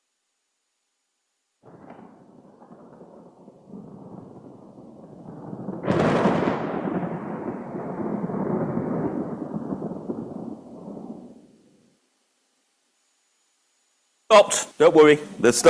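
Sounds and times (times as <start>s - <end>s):
thunder rumbling: 1.6s - 11.8s
speech: 14.3s - 15.6s.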